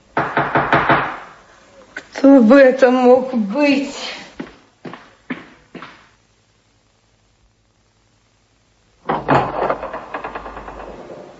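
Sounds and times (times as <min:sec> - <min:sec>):
knocking on an apartment door: 0:00.2 - 0:01.3
speech: 0:02.2 - 0:04.0.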